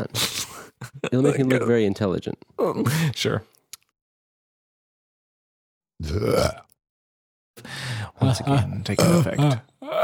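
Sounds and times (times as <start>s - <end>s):
speech: 1.1s - 3.6s, 6.0s - 6.7s, 7.6s - 10.0s
person burping: 6.0s - 6.8s, 9.0s - 10.0s.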